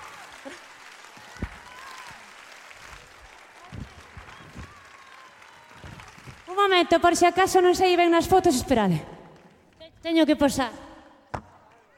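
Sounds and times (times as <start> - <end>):
audience applause: 0.0 - 7.1
speech: 6.6 - 9.1, 10.1 - 10.8.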